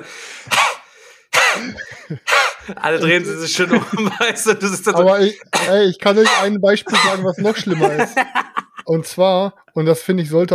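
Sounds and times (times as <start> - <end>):
imitated coughing fit from a popcorn husk: 0.0 - 8.8
raspy throat clearing: 1.4 - 2.8, 5.5 - 8.0
laughter: 1.6 - 9.0
speech: 1.6 - 10.5.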